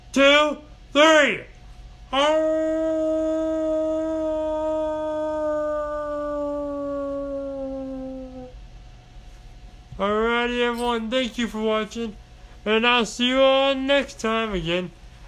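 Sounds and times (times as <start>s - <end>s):
speech: 0.2s - 1.5s, 2.1s - 3.3s, 10.0s - 15.0s
people howling together like wolves as a birthday howl: 2.2s - 8.6s.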